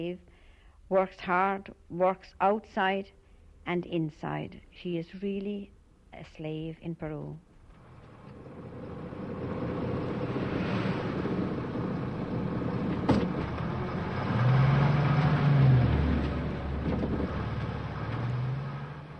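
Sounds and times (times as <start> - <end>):
speech: 0.0 - 0.3, 0.9 - 7.5
bus engine and road noise passing a house in Peru: 7.8 - 19.1.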